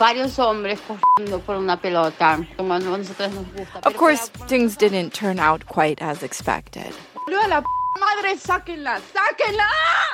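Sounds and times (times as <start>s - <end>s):
speech: 0.0s - 10.1s
phone message notification beep: 7.2s - 8.0s.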